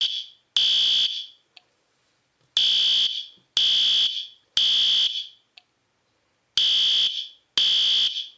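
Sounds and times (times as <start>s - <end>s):
fire alarm: 0.0s - 1.4s, 2.6s - 5.4s, 6.6s - 8.3s.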